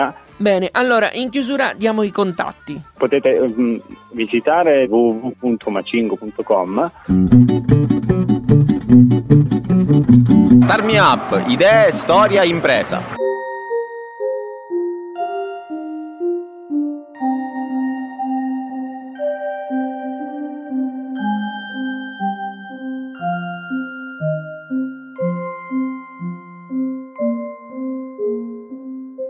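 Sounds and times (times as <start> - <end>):
speech: 0.0 - 8.2, 10.7 - 13.2
low bass line: 7.1 - 10.8
bright chiming plucked or mallet-like notes: 13.2 - 29.2.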